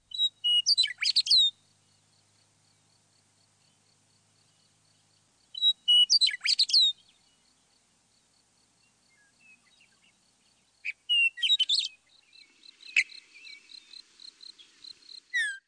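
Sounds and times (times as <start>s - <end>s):
western meadowlark singing: 0.0s - 2.1s, 4.4s - 7.7s, 8.8s - 15.6s.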